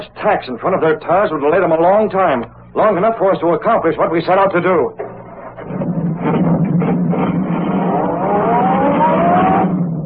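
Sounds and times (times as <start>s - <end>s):
speech: 0.1s - 5.0s
sedan engine accelerating along concrete road: 5.2s - 10.0s.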